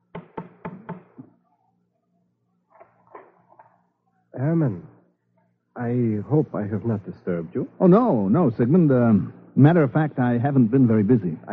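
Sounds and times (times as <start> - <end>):
crisp knocks on a front door: 0.1 - 1.2
speech: 4.4 - 4.9, 5.8 - 11.5.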